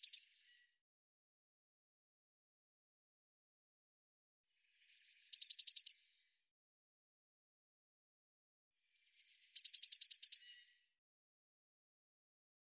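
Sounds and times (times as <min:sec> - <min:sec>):
Eurasian blue tit song: 0:00.0 - 0:00.6, 0:04.7 - 0:06.0, 0:08.9 - 0:10.8.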